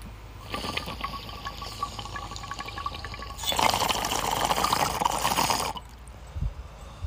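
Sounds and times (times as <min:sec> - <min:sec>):
bong water bubbling during a hit: 0:00.4 - 0:06.0.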